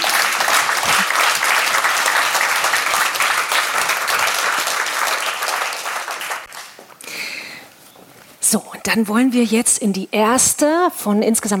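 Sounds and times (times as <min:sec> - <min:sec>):
audience applause: 0:00.0 - 0:06.8
speech: 0:08.5 - 0:11.5.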